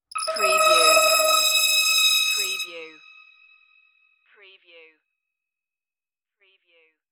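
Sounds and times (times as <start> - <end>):
crystal interface beam: 0.0 - 3.4.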